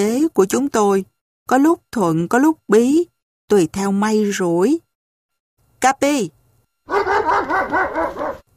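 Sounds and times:
speech: 0.0s - 4.9s, 5.8s - 8.4s
shaggy white dog yapping: 6.9s - 8.5s.

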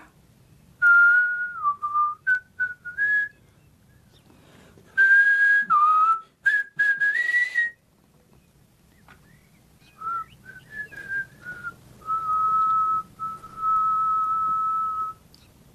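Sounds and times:
person whistling a tune: 0.8s - 3.4s, 5.0s - 7.8s, 10.0s - 15.2s.

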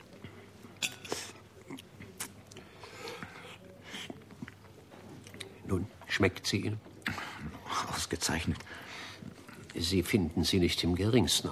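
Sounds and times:
person eating served soup: 0.1s - 5.6s
quiet mouth noises: 0.1s - 5.6s
speech: 5.7s - 6.9s, 8.1s - 8.9s, 9.8s - 11.4s.

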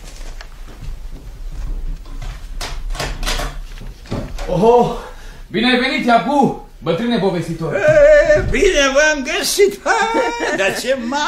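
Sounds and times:
low hum: 0.0s - 11.2s
door being unlocked and opened: 2.6s - 4.5s
speech: 4.5s - 11.2s
laughter: 7.7s - 11.2s.

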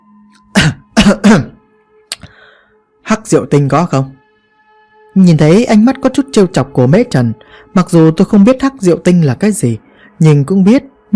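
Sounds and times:
dry throat clearing and coughing from one person: 0.4s - 1.6s
speech: 1.1s - 1.5s, 3.3s - 4.2s, 5.2s - 11.1s.

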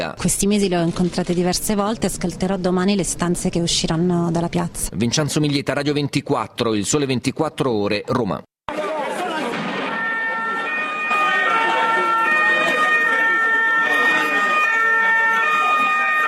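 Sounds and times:
speech: 0.0s - 8.5s
police van sirens wailing during a street protest: 8.8s - 16.2s.

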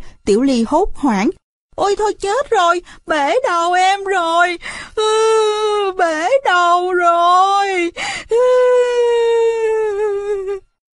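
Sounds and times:
speech: 0.3s - 9.2s
frightened girl bursting into tears with a high-pitched wail: 3.5s - 10.8s.

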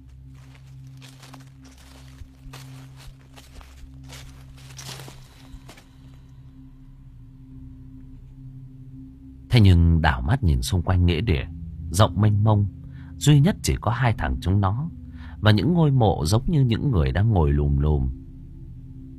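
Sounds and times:
rustling footsteps of many people walking around a cemetery: 0.0s - 6.2s
steady low hum: 0.0s - 13.8s
speech: 9.6s - 18.2s.

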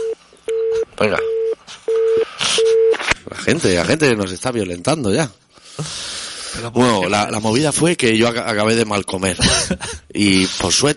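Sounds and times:
telephone line tone beeps: 0.0s - 3.0s
speech: 1.0s - 1.4s, 3.5s - 10.9s
laughter: 9.4s - 10.0s.

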